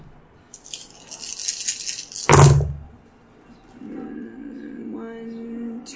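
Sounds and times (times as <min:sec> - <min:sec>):
dice rattling in a cup during a game: 0:00.6 - 0:02.7.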